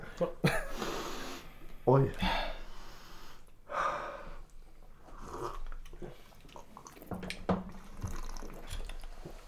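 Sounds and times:
speech: 0:00.2 - 0:00.6, 0:01.9 - 0:02.4
breathing: 0:00.7 - 0:04.5
people sipping and slurping drinks after a toast: 0:05.1 - 0:07.1, 0:07.7 - 0:09.4
swallowing: 0:05.1 - 0:07.1, 0:07.8 - 0:09.2.

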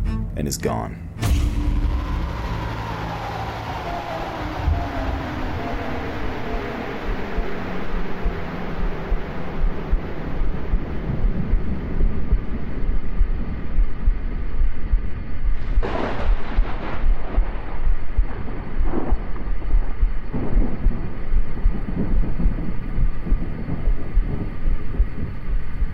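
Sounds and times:
speech: 0:00.4 - 0:01.4
thunder rumbling in a thunderstorm: 0:01.2 - 0:25.9.

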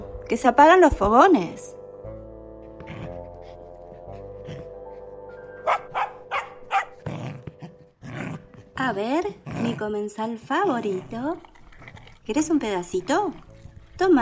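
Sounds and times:
speech: 0:00.3 - 0:01.8, 0:08.8 - 0:11.5, 0:12.3 - 0:13.4, 0:14.0 - 0:14.1
dog growling and snarling: 0:02.6 - 0:13.9
dog barking sharply: 0:05.6 - 0:07.1.

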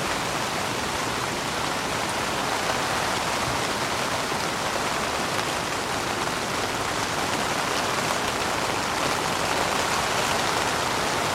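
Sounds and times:
soft rain pattering on a tent canvas: 0:00.0 - 0:11.3.

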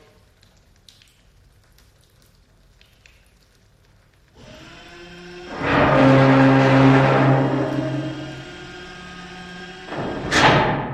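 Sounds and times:
humming drone of an opening door: 0:04.4 - 0:10.6
heavy door slowly grinding open with a low mechanical rumble: 0:04.4 - 0:10.9.

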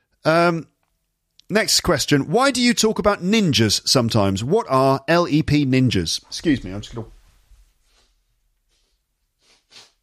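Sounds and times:
speech: 0:00.2 - 0:00.7, 0:01.5 - 0:07.2
soft rustling: 0:06.2 - 0:10.0
person sniffing while wiping nose: 0:08.8 - 0:10.0.

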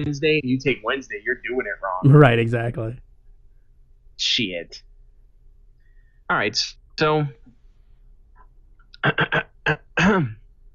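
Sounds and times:
speech: 0:00.0 - 0:03.0, 0:04.2 - 0:04.9, 0:06.3 - 0:07.5, 0:09.0 - 0:10.4
person clearing throat: 0:09.0 - 0:10.4.

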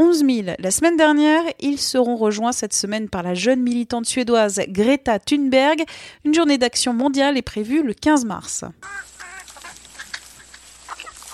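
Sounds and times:
speech: 0:00.0 - 0:09.1
battery farm hens clucking and squawking in the Somme France: 0:08.8 - 0:11.3.

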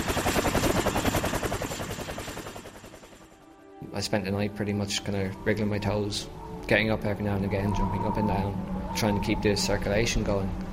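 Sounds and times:
search helicopter rotor blades chopping overhead in the wind: 0:00.0 - 0:03.4
speech: 0:03.9 - 0:10.7.

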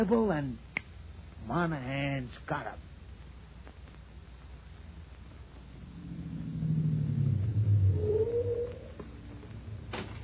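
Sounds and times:
speech: 0:00.0 - 0:00.7, 0:01.4 - 0:02.9
car engine rumbling as the vehicle rolls in and slows: 0:05.4 - 0:10.2.

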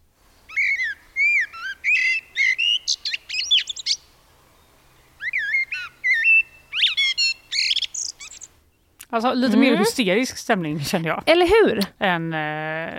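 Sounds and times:
Eurasian blackbird song: 0:00.5 - 0:09.0
speech: 0:09.1 - 0:12.9.

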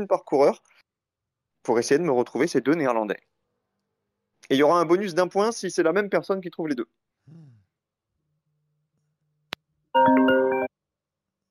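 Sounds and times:
speech: 0:00.0 - 0:00.8, 0:01.6 - 0:03.3, 0:04.5 - 0:07.6
faint breathy sigh: 0:07.3 - 0:07.7
electronic phone ringtone: 0:10.0 - 0:10.7.

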